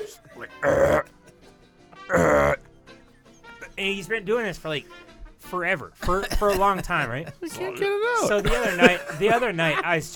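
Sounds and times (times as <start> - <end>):
voice imitating burping: 0.0 - 1.4, 2.0 - 2.7
speech: 0.4 - 0.8, 3.8 - 10.1
laughter: 6.0 - 10.1.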